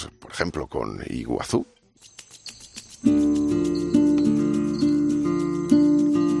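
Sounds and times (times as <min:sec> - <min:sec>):
speech: 0:00.0 - 0:02.1, 0:03.0 - 0:03.5
cricket chirping: 0:02.0 - 0:06.2
sustained musical notes: 0:03.0 - 0:06.3.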